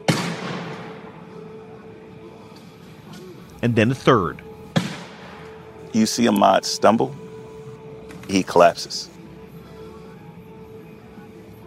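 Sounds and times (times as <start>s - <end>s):
gunshot fired during a struggle: 0.0s - 1.1s, 4.7s - 5.4s
speech: 3.6s - 4.5s, 6.0s - 7.2s, 8.3s - 9.1s.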